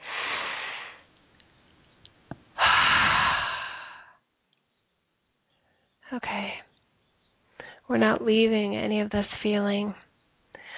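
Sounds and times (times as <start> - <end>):
deep breath in through the nose: 0.0 - 1.1, 2.6 - 4.2
long breath pushed out through the mouth: 2.6 - 4.2
speech: 7.9 - 10.0.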